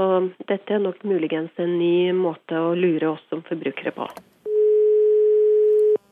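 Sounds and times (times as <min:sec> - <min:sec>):
speech: 0:00.0 - 0:04.3
steady mid-pitched telephone ringing tone: 0:04.5 - 0:06.1.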